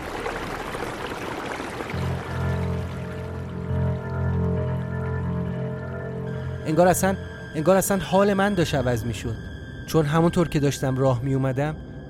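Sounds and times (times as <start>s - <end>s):
rushing river water: 0.0s - 5.2s
deep steady droning hum: 2.0s - 7.6s
speech: 6.7s - 11.8s.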